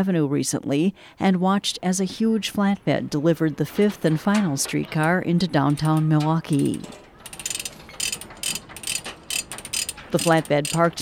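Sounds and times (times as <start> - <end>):
speech: 0.0 - 7.0, 10.1 - 11.0
giant wrenches ratcheting, unscrewing bolts holding a streetcar onto a flatbed truck: 3.7 - 11.0.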